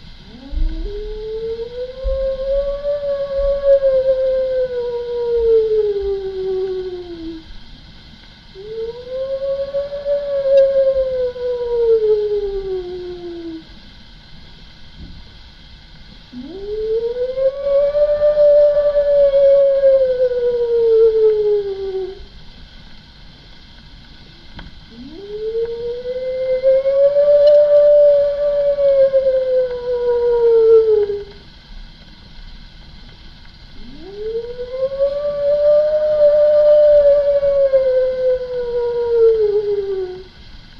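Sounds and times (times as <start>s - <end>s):
faint low hum: 0.0s - 40.7s
human voice imitating a she-wolf's howl: 0.2s - 7.5s, 8.6s - 13.8s, 16.3s - 22.3s, 24.9s - 31.4s, 33.8s - 40.3s.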